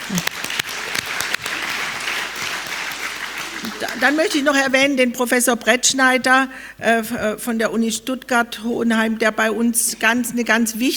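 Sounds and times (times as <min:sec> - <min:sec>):
crowd applauding a foundation for its work for democracy: 0:00.0 - 0:04.8
speech: 0:00.1 - 0:00.4, 0:03.7 - 0:10.9.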